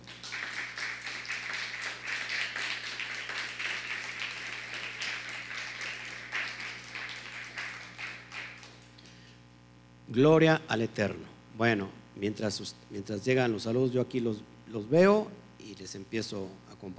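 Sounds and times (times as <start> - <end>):
crowd applauding: 0.0 - 9.2
low constant hum: 0.0 - 16.9
speech: 10.1 - 16.9.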